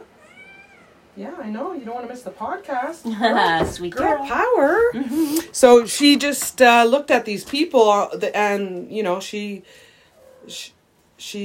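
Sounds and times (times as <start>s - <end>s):
kitten meowing: 0.2s - 1.0s
speech: 1.2s - 11.4s.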